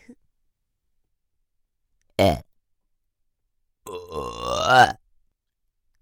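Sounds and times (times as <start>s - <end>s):
speech: 2.2s - 2.5s, 4.7s - 5.0s
burp-like throaty exhalations from a shrine maiden's mouth: 3.9s - 5.0s.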